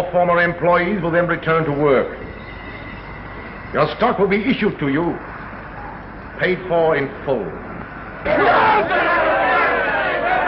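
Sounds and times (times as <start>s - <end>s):
speech: 0.0s - 2.3s, 3.7s - 5.3s, 6.4s - 9.3s
large happy crowd cheering: 8.3s - 10.4s.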